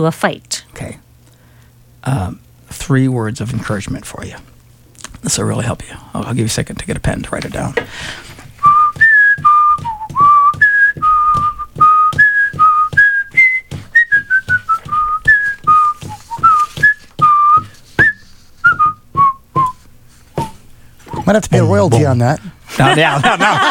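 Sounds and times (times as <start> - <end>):
speech: 0.0 - 1.0, 2.0 - 4.5, 5.2 - 8.3, 21.3 - 23.7
faint percussive beats: 8.6 - 19.8
person whistling a bouncy song melody: 8.6 - 19.8, 20.4 - 21.3
laughter: 21.1 - 23.7.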